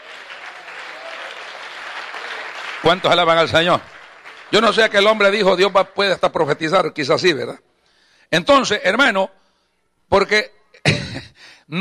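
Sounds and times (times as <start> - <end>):
congregation clapping: 0.0 - 7.0
speech: 2.8 - 7.6, 8.3 - 9.4, 10.1 - 11.7.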